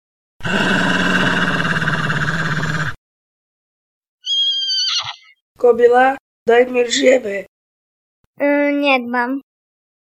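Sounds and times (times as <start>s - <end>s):
wolf growling: 0.4s - 3.0s
shrill high-pitched cry: 4.2s - 5.3s
speech: 5.6s - 7.5s, 8.4s - 9.5s.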